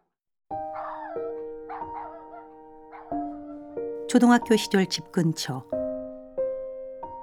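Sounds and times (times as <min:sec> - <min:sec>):
puppy crying in high whining yelps outside a restaurant: 0:00.8 - 0:03.2
speech: 0:04.1 - 0:05.8.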